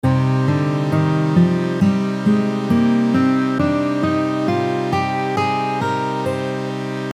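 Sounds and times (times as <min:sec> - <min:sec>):
C minor pentatonic scale: 0:00.0 - 0:07.1.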